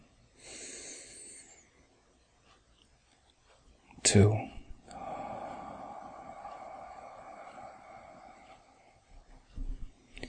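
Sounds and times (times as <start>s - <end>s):
deep breath in: 0.4s - 1.6s, 4.9s - 10.2s
speech: 4.1s - 4.5s.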